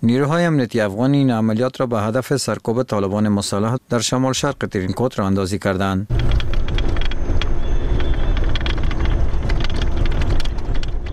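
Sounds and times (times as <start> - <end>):
speech: 0.0 - 6.5
Humvee armored vehicles of Afghan forces moving toward Tarinkot in Uruzgan: 6.1 - 11.1
rattling clicks and knocks of Humvee armored vehicles: 6.1 - 11.1.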